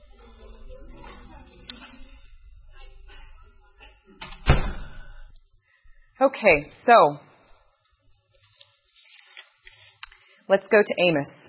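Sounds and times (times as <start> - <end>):
door swinging shut with a solid thud: 4.2 - 5.1
speech: 6.2 - 7.3, 10.5 - 11.4.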